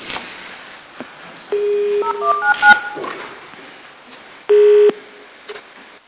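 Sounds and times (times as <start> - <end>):
faint room hum: 0.0 - 6.0
touch-tone keypad beeps as a number is dialed: 1.6 - 3.1.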